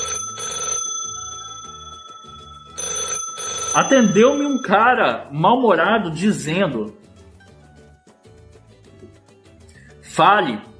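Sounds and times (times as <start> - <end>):
telephone ringing after a number is dialed from an office: 0.0 - 5.4
speech: 3.7 - 7.0, 10.2 - 10.7.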